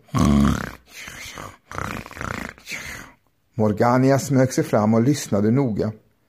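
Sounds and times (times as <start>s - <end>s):
voice imitating snoring from a jar in a courtyard: 0.0s - 3.2s
speech: 3.6s - 6.0s.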